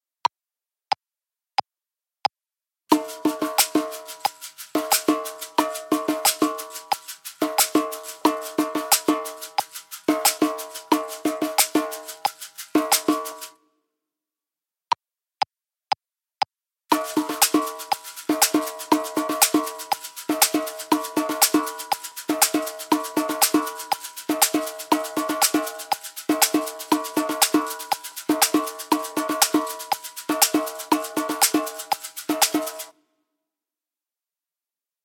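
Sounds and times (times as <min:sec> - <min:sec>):
caxixi shakers: 0:02.9 - 0:13.6, 0:16.9 - 0:32.9.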